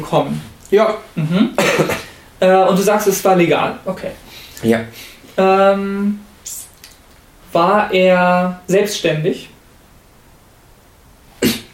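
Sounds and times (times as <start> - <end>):
speech: 0.0 - 6.2, 7.5 - 9.5
faint steady hum: 0.0 - 11.7
person coughing: 1.2 - 2.2, 11.4 - 11.7.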